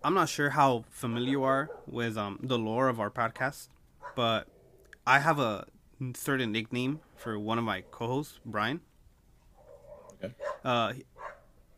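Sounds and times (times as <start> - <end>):
speech: 0.0 - 8.9, 10.2 - 11.1
dogs barking outside: 1.2 - 2.0, 4.0 - 4.8, 7.7 - 8.1, 9.6 - 11.6.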